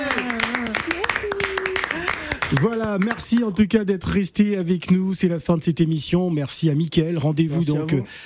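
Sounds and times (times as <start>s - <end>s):
small group applauding in a studio: 0.0s - 3.8s
speech: 2.5s - 8.2s.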